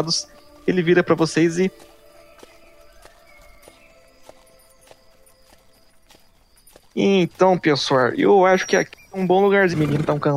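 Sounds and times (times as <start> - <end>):
speech: 0.0 - 1.9, 7.0 - 10.3
faint outdoor ambience: 0.0 - 10.3
horse hooves clip-clopping at a walking pace: 0.0 - 10.3
tired horses pulling a wagon at dusk neighing and snorting: 8.6 - 10.3.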